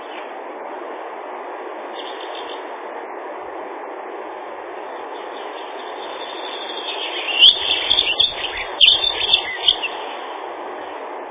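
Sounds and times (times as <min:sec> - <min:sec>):
background hiss: 0:00.0 - 0:11.3
Dunnock song, Prunella modularis, thin high twittering: 0:01.9 - 0:02.7, 0:04.8 - 0:10.3.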